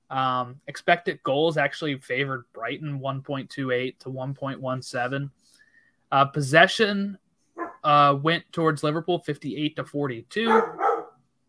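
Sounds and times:
speech: 0:00.1 - 0:07.2, 0:07.8 - 0:10.8
dog barking: 0:07.6 - 0:07.9, 0:10.5 - 0:11.2.

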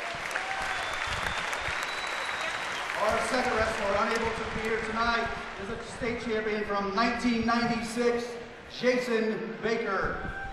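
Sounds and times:
crowd applauding for a state champion wrestler: 0:00.0 - 0:06.5
speech: 0:03.0 - 0:10.4.

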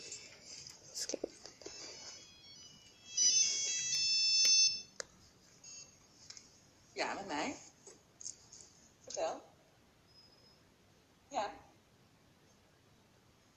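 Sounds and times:
phone ringtone bright electronic melody: 0:01.6 - 0:04.9
speech: 0:07.0 - 0:07.7.

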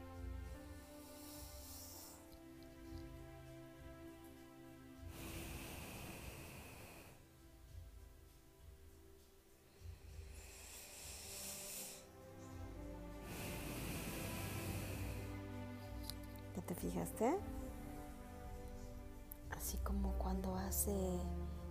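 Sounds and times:
soft sustained musical drone: 0:00.0 - 0:21.6
slow deep breathing through the nose: 0:00.5 - 0:03.1, 0:05.0 - 0:07.3, 0:09.6 - 0:16.5
speech: 0:16.7 - 0:17.6, 0:19.8 - 0:21.6.

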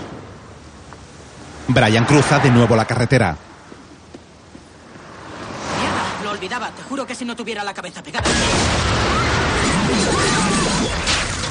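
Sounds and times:
speech: 0:01.7 - 0:03.4, 0:06.6 - 0:09.2, 0:09.9 - 0:11.0
explosion rocking a building under construction: 0:08.2 - 0:11.4.

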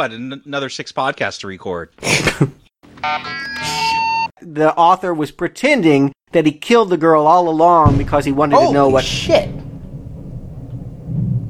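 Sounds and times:
speech: 0:00.0 - 0:03.8, 0:04.4 - 0:09.6
loud close thunder: 0:07.9 - 0:11.4.

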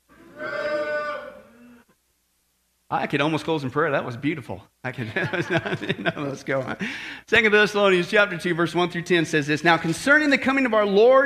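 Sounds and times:
audience imitating a cow's moo: 0:00.1 - 0:01.8
speech: 0:02.9 - 0:11.2
scattered laughter-like noise: 0:05.0 - 0:06.8.

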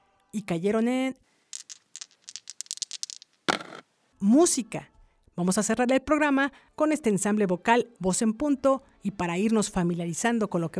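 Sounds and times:
speech: 0:00.3 - 0:01.3, 0:04.2 - 0:10.7
dice rattling and clattering: 0:01.5 - 0:03.8.

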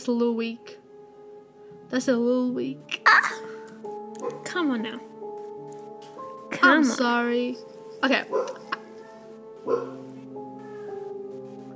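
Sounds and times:
speech: 0:00.0 - 0:00.8, 0:01.9 - 0:03.6, 0:04.2 - 0:05.1, 0:06.5 - 0:08.6, 0:09.6 - 0:10.0
dog barking outside: 0:04.2 - 0:04.5, 0:08.3 - 0:10.1.

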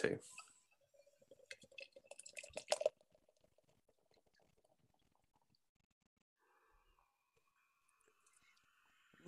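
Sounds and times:
speech: 0:00.0 - 0:00.5
beer pouring into a glass: 0:00.3 - 0:05.4.

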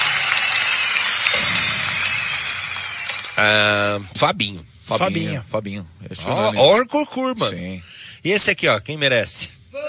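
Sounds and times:
crowd applause: 0:00.0 - 0:04.1
speech: 0:03.4 - 0:09.6.

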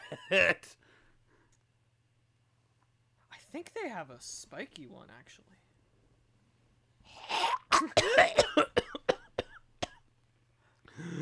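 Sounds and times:
person coughing with harsh gagging hacks: 0:00.0 - 0:00.7, 0:07.2 - 0:10.0
speech: 0:00.3 - 0:00.8, 0:03.5 - 0:05.6, 0:07.1 - 0:08.8.

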